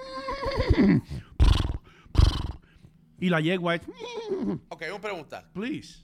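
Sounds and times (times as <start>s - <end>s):
person imitating a horse whinnying neigh: 0.0s - 2.6s, 3.9s - 4.7s
speech: 0.6s - 1.3s, 3.2s - 6.0s
person imitating horse snorting bursts: 0.8s - 2.8s.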